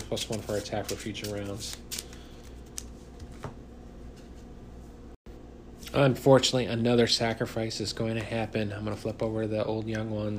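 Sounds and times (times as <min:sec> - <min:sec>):
deck of cards being shuffled: 0:00.0 - 0:03.6
speech: 0:00.1 - 0:02.0, 0:05.9 - 0:10.3.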